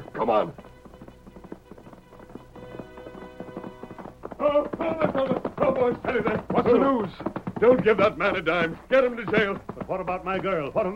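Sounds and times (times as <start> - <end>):
horse galloping hoofbeats: 0.0 - 10.9
speech: 0.2 - 0.7, 4.4 - 10.9.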